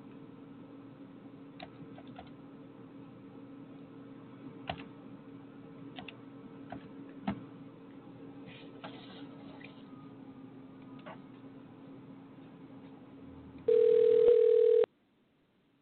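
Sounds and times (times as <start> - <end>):
telephone dial tone while placing a call: 13.7 - 14.9.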